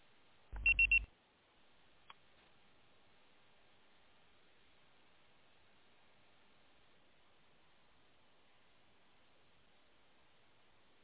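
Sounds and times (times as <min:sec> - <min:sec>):
high electronic voicemail beeps: 0:00.6 - 0:01.1
low hum on a phone line: 0:00.6 - 0:01.1.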